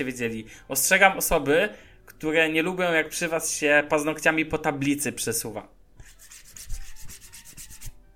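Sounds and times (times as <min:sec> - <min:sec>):
speech: 0:00.0 - 0:05.8
fingers rubbing textured back of a phone: 0:06.0 - 0:08.0.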